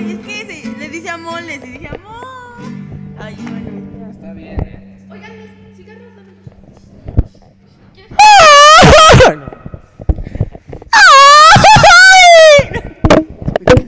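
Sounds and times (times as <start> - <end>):
speech: 1.2 - 2.2
person screaming loudly: 8.2 - 9.5, 11.0 - 12.8.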